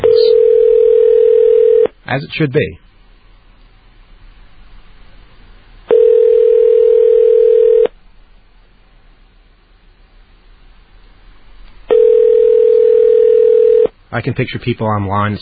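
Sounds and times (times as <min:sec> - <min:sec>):
ringback tone of an outgoing phone call: 0:00.0 - 0:01.9, 0:05.9 - 0:07.9, 0:11.9 - 0:13.9
speech: 0:02.1 - 0:02.8, 0:14.2 - 0:15.4.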